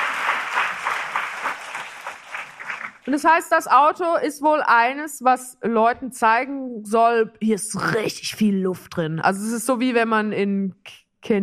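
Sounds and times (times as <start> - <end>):
group applause with rhythmic clapping: 0.0 - 3.2
speech: 3.1 - 11.4.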